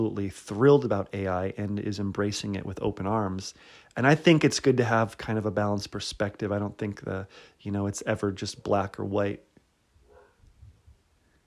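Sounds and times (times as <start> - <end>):
speech: 0.0 - 9.5
dog barking: 10.1 - 10.4.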